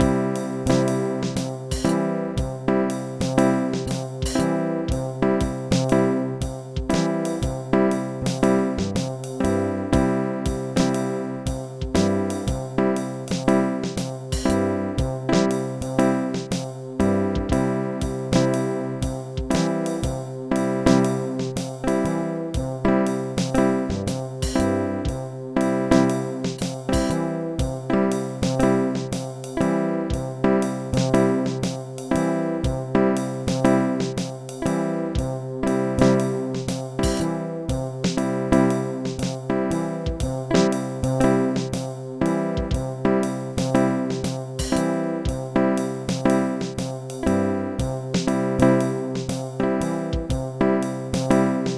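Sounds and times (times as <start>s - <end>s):
jazz music in five: 0.0s - 51.7s.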